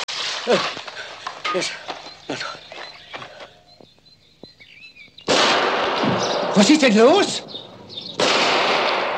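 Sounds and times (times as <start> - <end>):
speech: 0.4 - 0.9, 1.5 - 2.6, 6.6 - 7.5
gunshots in the forest: 5.3 - 7.2, 8.2 - 9.1.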